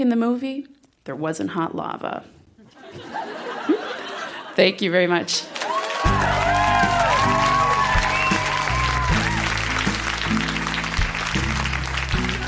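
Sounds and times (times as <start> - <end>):
speech: 0.0 - 3.4, 4.6 - 6.2
laughter: 2.7 - 4.6
large audience applause: 5.5 - 12.4
whoops and cheers: 5.6 - 10.1.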